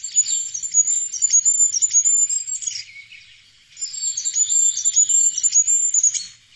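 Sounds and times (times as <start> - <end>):
goldcrest song, very high-pitched: 0.0 - 6.5.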